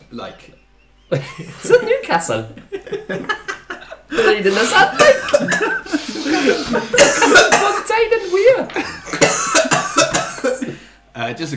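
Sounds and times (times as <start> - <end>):
speech: 0.1 - 3.4, 4.1 - 9.8, 11.2 - 11.5
laughter: 1.1 - 7.6, 8.4 - 9.4
harsh raspy coughing after laughing: 4.1 - 10.8.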